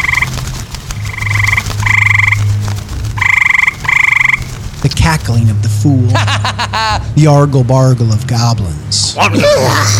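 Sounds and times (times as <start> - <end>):
raspy buzzing croaks of flying bat-winged toads: 0.0 - 5.0
speech: 5.1 - 9.9
laughter: 5.9 - 7.2.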